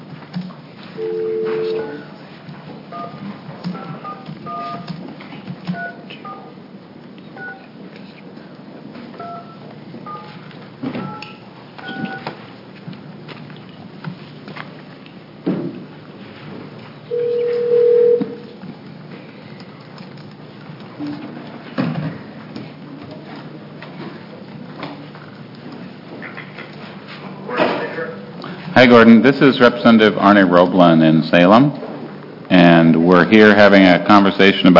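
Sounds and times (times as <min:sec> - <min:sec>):
telephone ringback tone: 0:01.0 - 0:02.1, 0:17.1 - 0:18.4
touch-tone keypad beeps: 0:02.9 - 0:04.9, 0:05.7 - 0:06.5, 0:07.4 - 0:07.6, 0:09.2 - 0:10.4, 0:11.0 - 0:12.3
telephone dial tone: 0:03.0 - 0:04.9, 0:17.1 - 0:18.4
speech: 0:28.8 - 0:31.8, 0:32.8 - 0:34.7.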